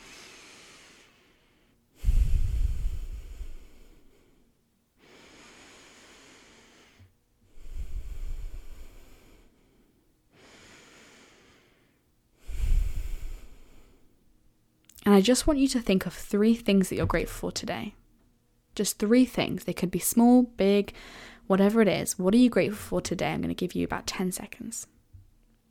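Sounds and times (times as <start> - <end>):
deep breaths in and out through the nose: 0.0 - 14.2, 21.0 - 21.5
speech: 15.2 - 18.0, 18.8 - 25.0.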